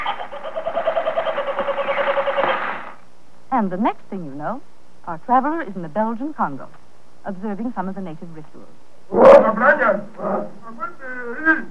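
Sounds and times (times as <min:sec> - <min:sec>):
kookaburra laughing in Australia: 0:00.0 - 0:02.7, 0:10.6 - 0:11.7
speech: 0:03.6 - 0:11.7.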